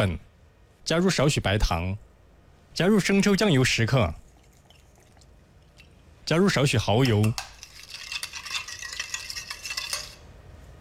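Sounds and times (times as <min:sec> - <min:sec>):
speech: 0:00.0 - 0:02.1, 0:02.8 - 0:04.2, 0:06.3 - 0:07.5
stirring seasoning and potato starch mixture in a bowl: 0:03.0 - 0:06.0, 0:06.8 - 0:10.4.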